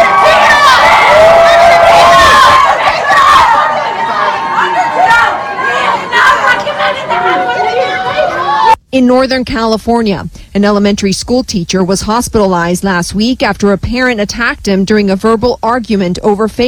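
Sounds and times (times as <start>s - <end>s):
crowd of protesters yelling and shouting over one another: 0.0s - 8.8s
speech: 9.0s - 16.6s.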